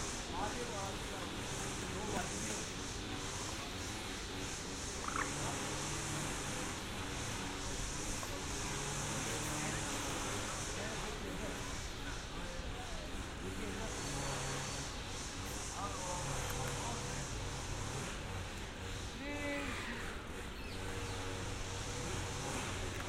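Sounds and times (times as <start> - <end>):
passing traffic with low engine rumble in Amsterdam: 0.0 - 23.0
voices talking on an Amsterdam street: 0.0 - 23.0.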